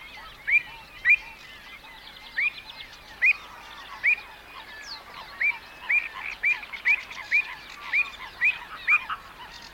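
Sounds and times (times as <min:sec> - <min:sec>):
avocet wading bird calls: 0:00.0 - 0:09.7.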